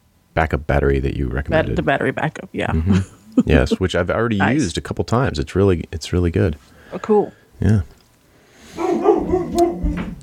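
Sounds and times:
speech: 0.4s - 8.0s
dog barking: 8.7s - 10.2s.

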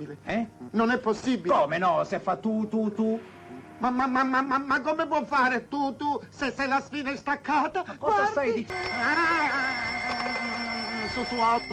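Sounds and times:
speech: 0.0s - 10.5s, 11.2s - 11.7s
telephone ringing: 8.7s - 11.7s.

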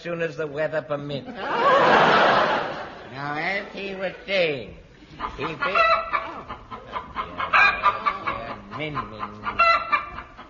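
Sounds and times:
speech: 0.0s - 6.1s, 8.8s - 9.8s
laughter: 1.2s - 3.2s, 5.0s - 10.4s
chicken clucking: 5.0s - 10.4s.

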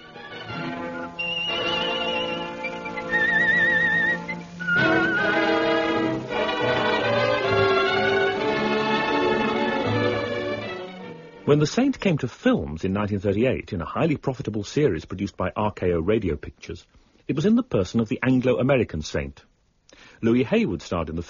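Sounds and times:
whistled theme melody: 0.0s - 10.6s
full orchestral backing: 0.0s - 11.7s
speech: 11.5s - 21.2s.

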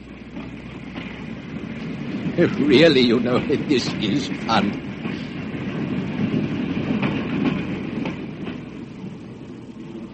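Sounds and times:
crowded passenger train rumbling heard from aboard a carriage: 0.0s - 10.1s
speech: 2.4s - 4.9s.

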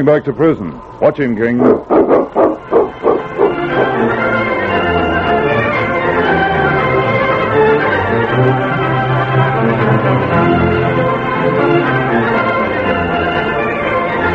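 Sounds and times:
speech: 0.0s - 2.9s
steady sustained tonal drone: 0.2s - 14.3s
dog barking: 1.6s - 4.0s.

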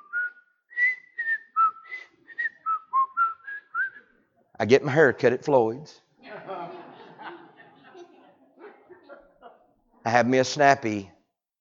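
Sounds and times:
person whistling a bright melodic tune while walking down the street: 0.0s - 4.1s
speech: 4.6s - 6.0s, 10.1s - 11.2s
laughter: 6.2s - 10.1s.

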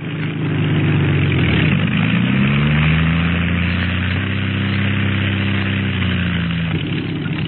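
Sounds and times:
small aircraft engine running after landing: 0.0s - 7.4s.

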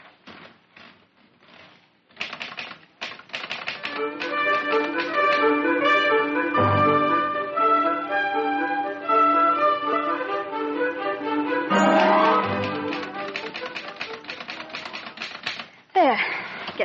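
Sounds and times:
typewriter keys clacking: 1.5s - 5.4s, 11.8s - 15.8s
sustained music: 3.9s - 15.0s.

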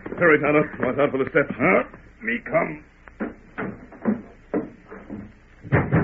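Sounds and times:
speech: 0.2s - 2.9s
ranch door being forced open at night by people breaking in: 3.2s - 6.0s.

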